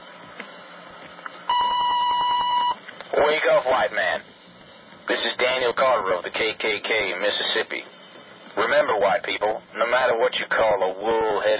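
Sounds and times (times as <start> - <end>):
hiss: 0.0 - 11.5
answering machine steady electronic beep: 1.5 - 2.8
speech: 3.2 - 4.4, 5.1 - 8.0, 8.6 - 11.5.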